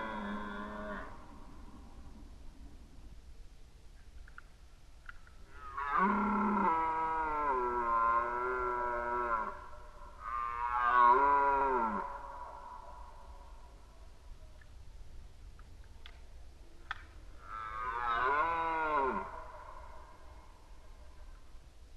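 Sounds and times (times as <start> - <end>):
red deer stag roaring during the rut: 0.0 - 1.2, 5.5 - 12.7, 17.4 - 20.2.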